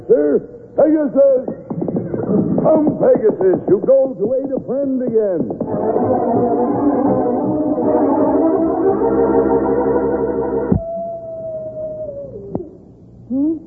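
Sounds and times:
speech: 0:00.1 - 0:01.6, 0:02.2 - 0:08.4, 0:09.0 - 0:10.8
wolves howling: 0:05.7 - 0:12.8.

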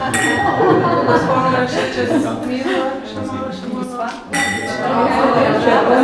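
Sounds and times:
wine glasses clinking in a toast at a Sauvignon wine tasting: 0:00.0 - 0:03.0, 0:04.3 - 0:05.6
lively voices at a wine tasting: 0:00.0 - 0:06.0
people laughing at a wine tasting: 0:00.0 - 0:06.0.

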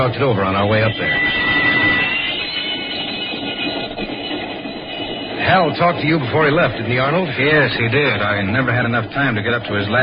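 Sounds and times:
speech: 0:00.0 - 0:01.6, 0:05.5 - 0:10.0
train rolling along the rails from Chicago over Illinois and Wisconsin: 0:00.0 - 0:10.0
faint high squeal: 0:00.4 - 0:06.7.

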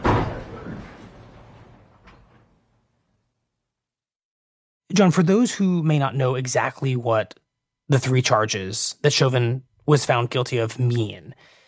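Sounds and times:
heavy courtroom door shutting with a thud: 0:00.0 - 0:02.7
speech: 0:04.9 - 0:11.6.

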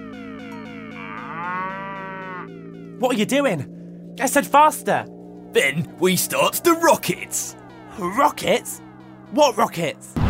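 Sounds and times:
cow mooing: 0:00.5 - 0:02.7, 0:04.6 - 0:09.4
speech: 0:03.0 - 0:10.2.

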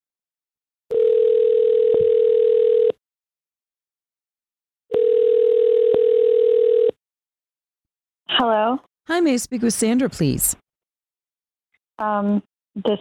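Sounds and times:
telephone ringback tone of an outgoing phone call: 0:00.9 - 0:02.9, 0:05.0 - 0:06.9
speech: 0:08.4 - 0:10.6, 0:12.0 - 0:12.9.

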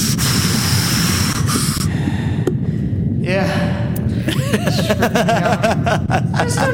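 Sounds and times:
scuba regulator on an air tank hissing underwater in the ocean: 0:00.0 - 0:01.9
steady breathing rushing underwater in the ocean: 0:00.0 - 0:03.1
laughter: 0:04.2 - 0:06.7.

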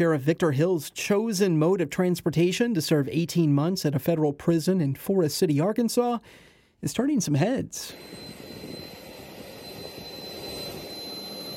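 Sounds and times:
speech: 0:00.0 - 0:08.5
business jet engine running: 0:07.9 - 0:11.5.

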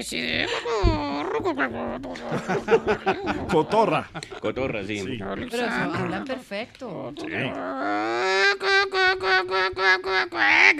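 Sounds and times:
speech: 0:00.0 - 0:10.7
laughter: 0:00.2 - 0:06.4
person imitating hens clucking: 0:07.3 - 0:10.7.

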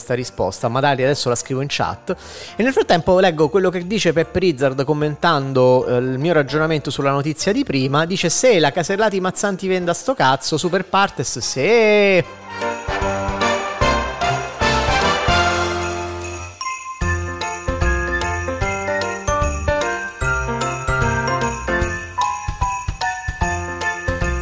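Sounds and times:
speech: 0:00.1 - 0:12.7
small bells jingling: 0:12.2 - 0:24.4.

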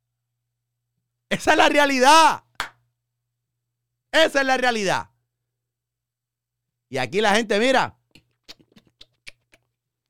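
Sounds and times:
speech: 0:01.4 - 0:02.4, 0:04.1 - 0:05.1, 0:06.9 - 0:08.0
person sucking on a finger: 0:08.2 - 0:09.8.

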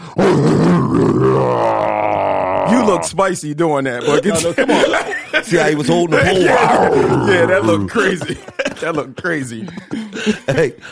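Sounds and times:
person growling roar in imitation of a lion: 0:00.0 - 0:03.1, 0:06.3 - 0:07.9
speech: 0:00.2 - 0:01.6, 0:03.0 - 0:10.9
laughter: 0:04.0 - 0:10.9.

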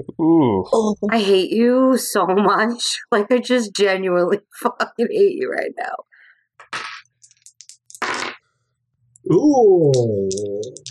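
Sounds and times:
long drawn-out vocal groan: 0:00.0 - 0:00.6, 0:09.3 - 0:10.6
speech: 0:00.0 - 0:06.1, 0:09.2 - 0:10.9
dice clattering and rattling: 0:06.9 - 0:08.1, 0:09.9 - 0:10.9.

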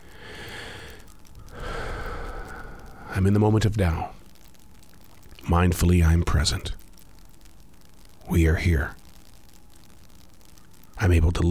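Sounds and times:
person taking a big deep breath during meditation: 0:00.1 - 0:03.2
speech: 0:03.2 - 0:04.2, 0:05.5 - 0:06.8, 0:08.3 - 0:09.0, 0:11.0 - 0:11.5.

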